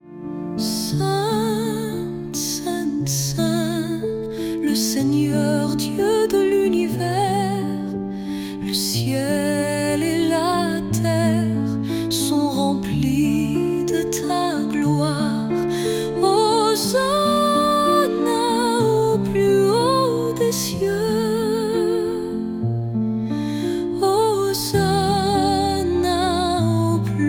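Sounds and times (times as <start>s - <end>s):
woman singing: 0.5s - 22.7s, 23.5s - 27.2s.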